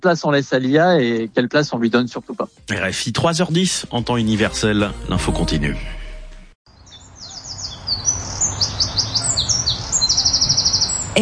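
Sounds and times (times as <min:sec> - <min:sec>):
speech: 0:00.0 - 0:06.0
several birds chirping and singing: 0:06.7 - 0:11.1.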